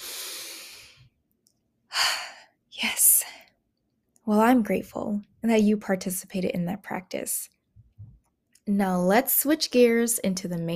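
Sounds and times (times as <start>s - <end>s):
deep breath during a guided meditation exercise: 0.0s - 1.1s
speech: 4.3s - 7.6s, 8.7s - 10.7s.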